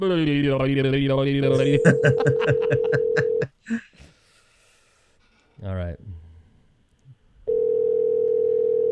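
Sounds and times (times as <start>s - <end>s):
speech: 0.0s - 4.0s, 5.6s - 6.2s
laughter: 1.6s - 3.8s
steady electronic telephone ringing tone: 1.8s - 3.4s, 7.5s - 8.9s.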